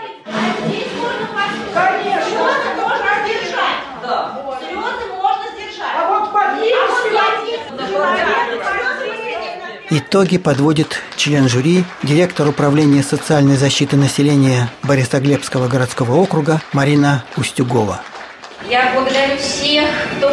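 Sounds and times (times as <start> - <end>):
noisy crowd of players arguing loudly over one another: 0.0 - 10.0
speech: 9.9 - 20.3.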